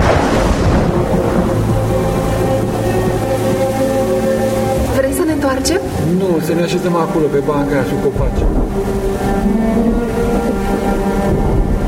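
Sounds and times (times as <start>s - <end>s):
thunder rumbling on a sultry summer day before rain: 0.0s - 11.8s
speech: 6.3s - 10.0s.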